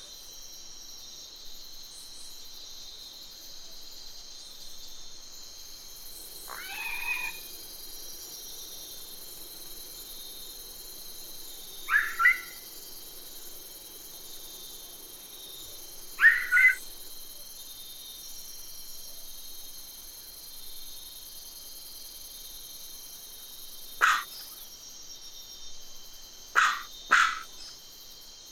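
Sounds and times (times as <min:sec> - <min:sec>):
MacGregor's bowerbird calling: 0:06.5 - 0:07.5, 0:11.9 - 0:12.6, 0:16.2 - 0:16.8, 0:24.0 - 0:24.5, 0:26.6 - 0:27.6.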